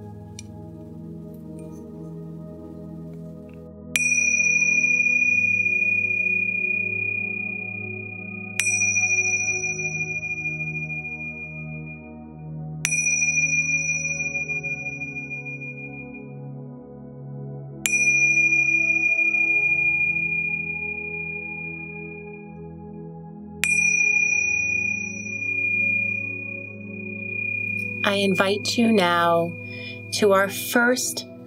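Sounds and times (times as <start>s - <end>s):
soft low sustained musical drone: 0.0s - 31.4s
meditation bell struck, clear metallic tone: 4.0s - 12.1s, 12.8s - 16.3s, 17.8s - 22.6s, 23.6s - 31.4s
speech: 28.1s - 31.3s.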